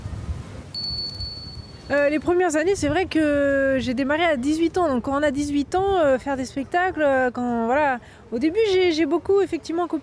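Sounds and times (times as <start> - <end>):
storyteller's small hand bell ringing: 0.8 - 2.0
speech: 1.9 - 10.0.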